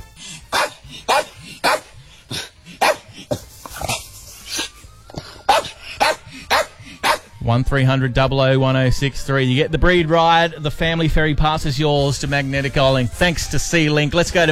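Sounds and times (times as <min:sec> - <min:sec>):
dog barking: 0:00.5 - 0:04.0, 0:05.5 - 0:07.3
speech: 0:07.5 - 0:14.5.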